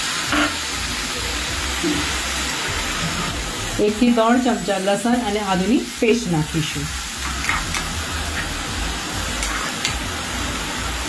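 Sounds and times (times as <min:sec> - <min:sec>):
finely chopped tomatoes sizzling in a frying pan over a lowered gas flame: 0:00.0 - 0:11.0
speech: 0:01.8 - 0:02.2, 0:03.8 - 0:07.0.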